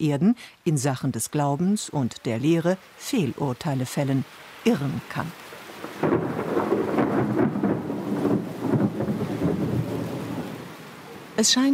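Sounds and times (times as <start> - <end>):
speech: 0.0 - 5.4, 11.4 - 11.7
steady rain-like hiss: 0.0 - 11.7
heavy thunder rumbling during a heavy thunderstorm: 5.6 - 11.4.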